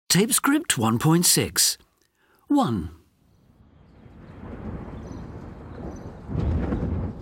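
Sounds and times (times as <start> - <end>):
speech: 0.1 - 1.9, 2.5 - 3.0
deep thunder rumbling: 3.4 - 7.2.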